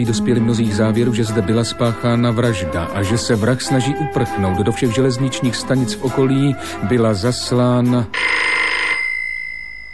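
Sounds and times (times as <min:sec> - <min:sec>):
speech: 0:00.0 - 0:08.4
telephone bell ringing: 0:08.2 - 0:09.9.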